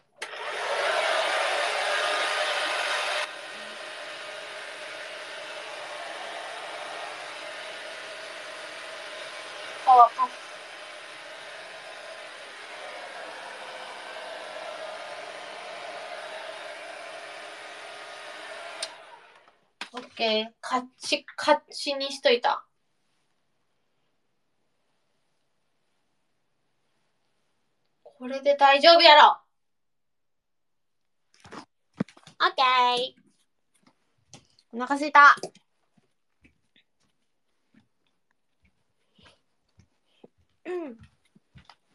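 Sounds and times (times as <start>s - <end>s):
hair dryer blowing air: 0.2s - 20.0s
speech: 20.0s - 22.7s, 28.3s - 29.4s, 32.4s - 33.2s, 34.7s - 35.6s, 40.7s - 41.1s.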